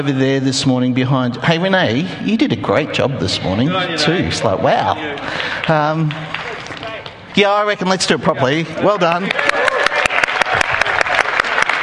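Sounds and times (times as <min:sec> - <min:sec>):
speech: 0:00.0 - 0:06.4, 0:07.4 - 0:09.6
church congregation applauding: 0:05.0 - 0:07.1, 0:08.9 - 0:11.8.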